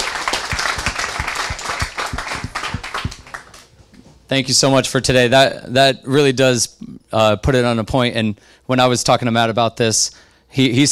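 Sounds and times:
audience applause for a speaker: 0.0 - 3.6
speech: 4.3 - 10.8.

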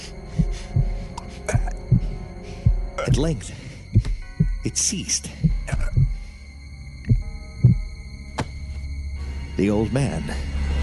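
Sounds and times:
muffled low heartbeat: 0.0 - 6.3, 7.0 - 8.0
speech: 3.1 - 3.6, 4.6 - 5.4, 9.6 - 10.6.

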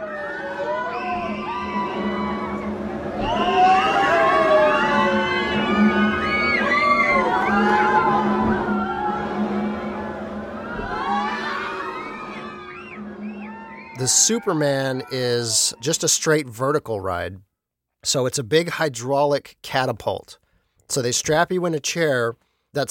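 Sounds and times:
steady low mechanical hum of a rocking pirate ship amusement park ride: 0.0 - 13.9
children shouting on a rocking pirate ship amusement park ride: 0.0 - 15.8
whoops and cheering on a rocking pirate ship amusement park ride: 0.0 - 16.0
speech: 14.2 - 22.8.

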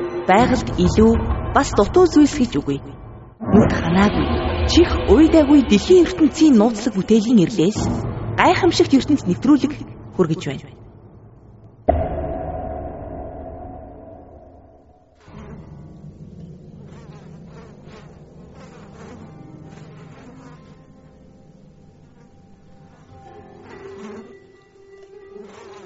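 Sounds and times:
speech: 0.3 - 3.0, 3.5 - 10.8
common black house fly buzzing: 15.2 - 25.8.

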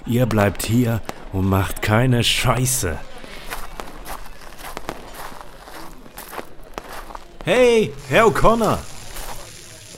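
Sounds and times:
speech: 0.0 - 3.1, 7.4 - 8.9
footsteps of a person walking away: 3.0 - 9.8.

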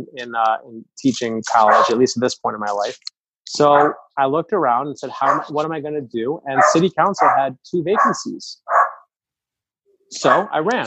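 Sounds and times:
speech: 0.0 - 8.7, 10.1 - 10.8
small Shih Tzu poodle mix dog barking: 1.5 - 2.0, 3.8 - 4.0, 5.2 - 5.5, 6.6 - 9.0, 10.2 - 10.6.

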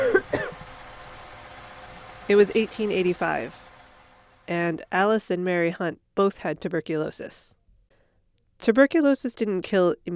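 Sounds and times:
rough coughs: 0.0 - 0.6
low steady rumble: 0.0 - 6.1
speech: 2.3 - 3.6, 4.5 - 7.6, 8.6 - 10.1.

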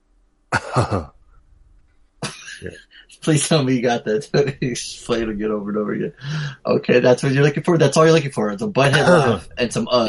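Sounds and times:
person imitating a cartoon character's gravelly cough: 0.6 - 1.0, 8.9 - 9.5
laughter: 0.6 - 1.1, 2.2 - 7.9, 8.5 - 10.0
speech: 0.8 - 1.2, 2.6 - 10.0.

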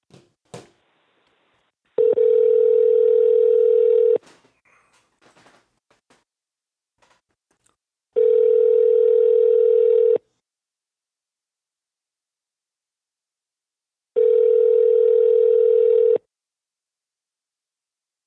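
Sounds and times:
outgoing phone call ringback tones: 2.0 - 4.2, 8.2 - 10.2, 14.2 - 16.2.

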